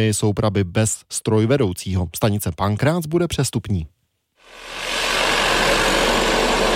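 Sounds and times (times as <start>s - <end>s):
speech: 0.0s - 4.8s
tunnel drilling rig running: 4.5s - 6.7s.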